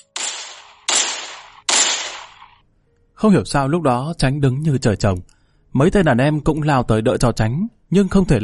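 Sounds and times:
gunshots in a shooting sound effect: 0:00.0 - 0:02.6
speech: 0:03.2 - 0:08.4.

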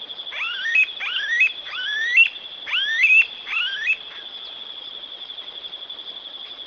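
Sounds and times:
Smooth-billed Ani Crotophaga ani giving rising whining whistled calls: 0:00.3 - 0:04.4.

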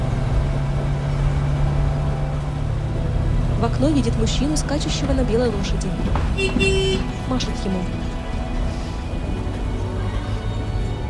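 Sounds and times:
small old minibus driving along a dirt road: 0:00.0 - 0:11.0
speech: 0:03.6 - 0:08.1.

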